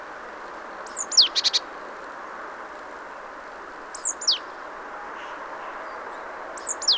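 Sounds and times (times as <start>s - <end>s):
background hiss: 0.0s - 6.9s
Parus major calling: 0.9s - 1.7s, 3.9s - 4.6s, 6.6s - 6.9s.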